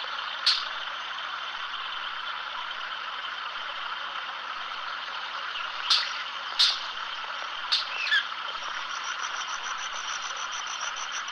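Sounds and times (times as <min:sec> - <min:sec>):
steady background noise: 0:00.0 - 0:11.3
white-bearded manakin sharp snapping clicks: 0:05.9 - 0:06.9.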